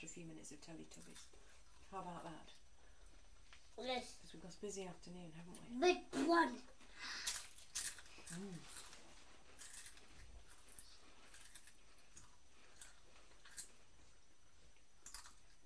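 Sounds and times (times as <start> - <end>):
speech: 0.0 - 2.6, 3.8 - 7.2, 8.3 - 8.8
crisp being chewed: 7.2 - 13.8.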